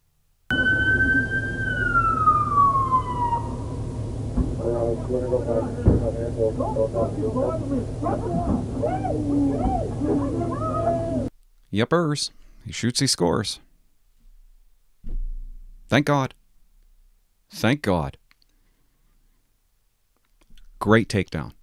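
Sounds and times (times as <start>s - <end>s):
emergency siren wailing: 0.5s - 11.3s
steady roar: 0.5s - 11.3s
voices: 4.4s - 11.3s
speech: 6.4s - 10.6s, 11.7s - 13.7s, 15.9s - 16.4s, 17.5s - 18.2s, 20.8s - 21.6s.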